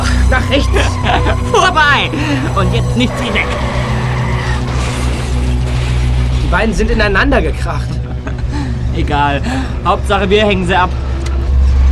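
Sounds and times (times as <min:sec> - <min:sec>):
laughter: 0:00.0 - 0:04.7, 0:07.7 - 0:08.8
Honda car tires squealing while braking hard and skidding in a chase: 0:00.0 - 0:06.6
deep car engine roar during a chase: 0:00.0 - 0:07.0
speech: 0:00.3 - 0:03.9, 0:06.5 - 0:08.0, 0:09.0 - 0:11.0.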